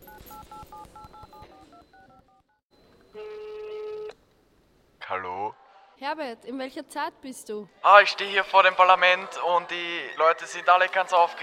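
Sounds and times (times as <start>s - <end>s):
touch-tone beeps of a telephone call being dialed: 0.0s - 4.1s
speech: 5.1s - 11.4s.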